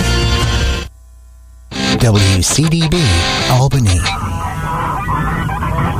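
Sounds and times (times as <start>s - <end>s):
flock of geese and ducks honking: 1.7s - 5.9s
speech: 2.0s - 4.4s.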